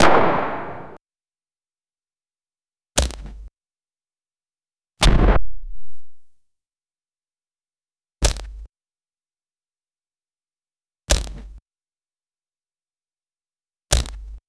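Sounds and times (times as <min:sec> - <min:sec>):
camera photo shots impact: 0:00.0 - 0:01.0, 0:05.0 - 0:06.1.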